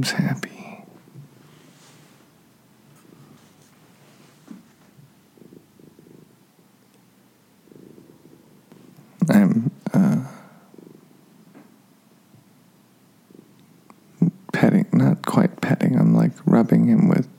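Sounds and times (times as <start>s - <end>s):
speech: 0.0s - 0.5s, 16.6s - 17.2s
cat purring: 0.0s - 17.2s
rustling bumps against the microphone: 2.9s - 5.1s.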